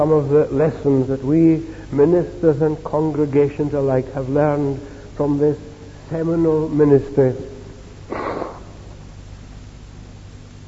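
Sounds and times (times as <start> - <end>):
speech: 0.0 - 7.6
soft low hum: 0.0 - 10.6
nose blowing: 8.1 - 9.1.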